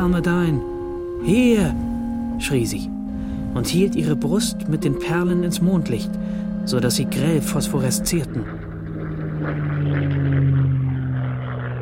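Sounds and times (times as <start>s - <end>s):
speech: 0.0s - 3.0s, 3.6s - 8.6s
propeller airplane passing overhead: 0.0s - 11.7s.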